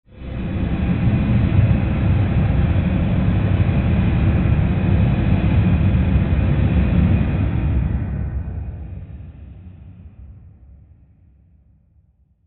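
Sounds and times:
airy rushing rumble sound design: 0.1 - 11.0.

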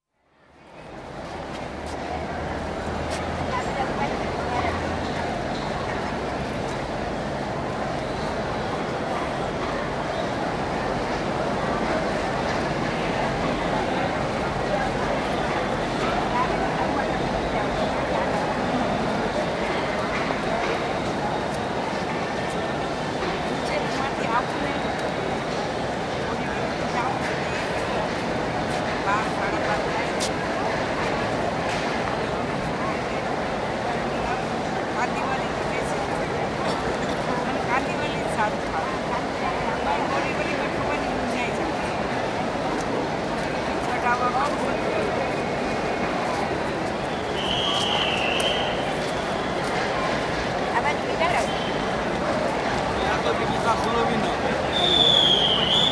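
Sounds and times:
trains at a railway station: 0.3 - 55.8
noisy crowd footsteps at a railway station at rush hour: 0.7 - 55.8
whistles at a railway station: 47.1 - 49.5, 54.6 - 55.8.

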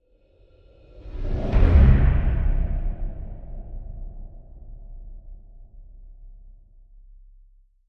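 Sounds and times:
deep airy breathy horror trailer whoosh impact: 0.9 - 5.6.

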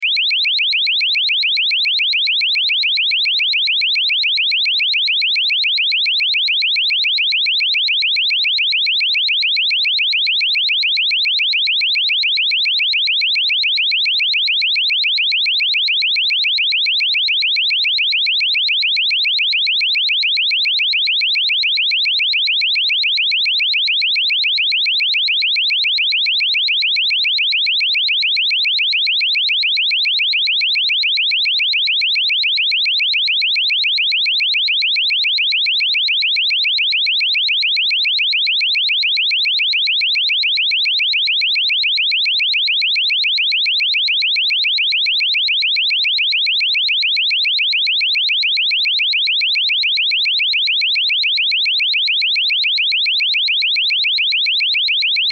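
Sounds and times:
burglar security system alarm beeps: 0.0 - 55.3.

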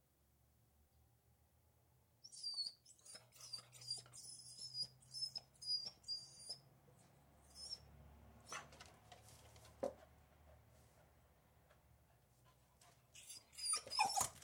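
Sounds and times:
beagle whining indoors: 2.2 - 6.6, 7.4 - 7.9, 13.1 - 14.4
knocks and scrapes of beagle jumping up at a door: 8.6 - 11.0.

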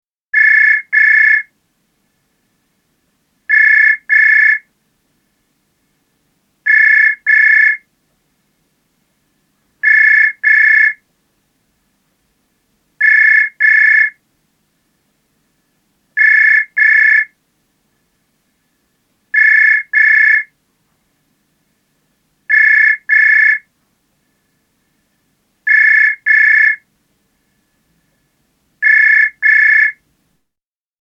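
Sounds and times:
push button telephone ringing constantly: 0.4 - 1.5, 3.5 - 4.6, 6.7 - 7.8, 9.8 - 11.0, 13.0 - 14.2, 16.2 - 17.3, 19.4 - 20.5, 22.5 - 23.6, 25.7 - 26.8, 28.8 - 30.0.

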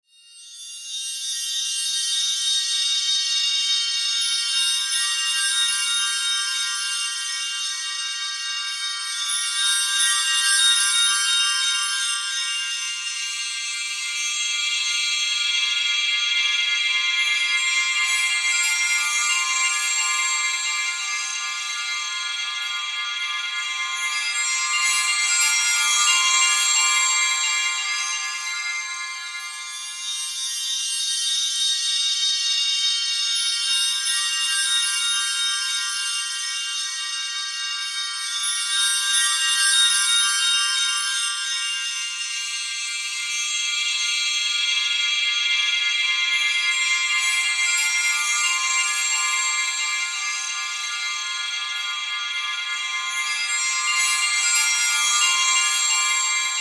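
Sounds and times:
chimes with reverb wash: 0.1 - 56.6.

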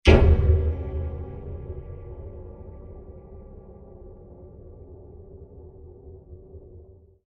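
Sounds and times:
massive metal impacts: 0.0 - 5.6
blasts: 0.0 - 6.4.

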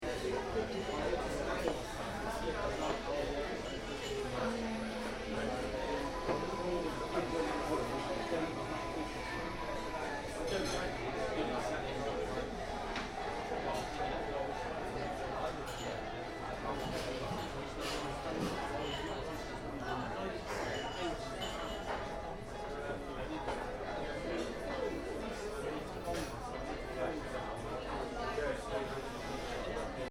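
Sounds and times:
people talking in a bar interior: 0.0 - 30.0
bar interior ambience: 0.7 - 14.8.

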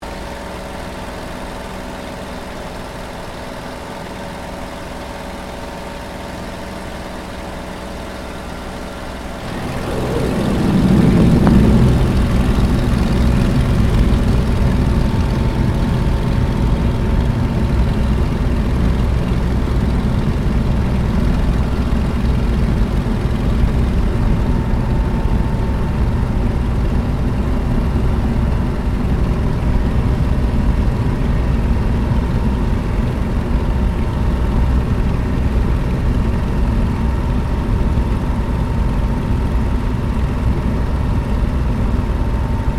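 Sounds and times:
WW2 P-40 Kittyhawk fighter plane flying heard from canopy interior: 5.0 - 42.7.

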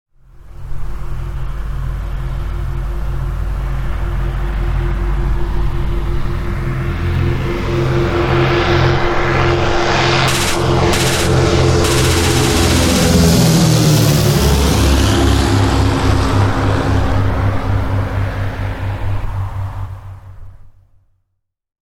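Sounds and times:
propeller aircraft passing on a strafing run: 0.4 - 20.8
aircraft machine gun fire: 10.3 - 13.8.

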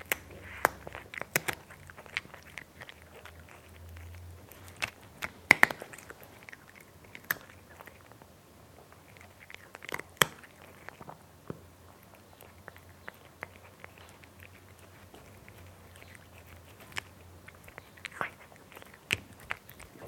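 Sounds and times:
domestic cat chewing crunchy dry food: 0.0 - 20.0
faint background hum: 0.0 - 20.0.

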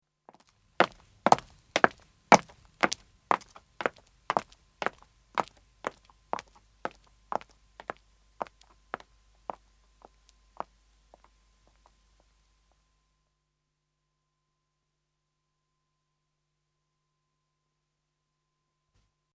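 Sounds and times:
two women's footsteps walking away: 0.3 - 12.8.

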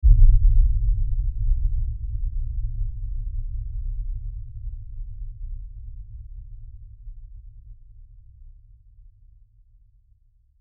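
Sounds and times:
LFE rumble hit: 0.0 - 6.6.

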